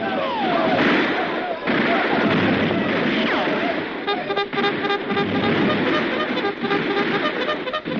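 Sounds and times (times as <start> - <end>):
people shouting: 0.0 - 7.9
heavy gunfire from a fort: 0.4 - 7.9
horn-like tones: 4.0 - 7.9.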